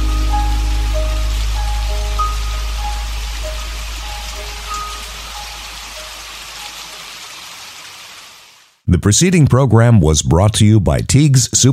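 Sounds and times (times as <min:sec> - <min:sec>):
steady rain pattering on a hard surface: 0:00.0 - 0:08.8
speech: 0:09.0 - 0:11.7.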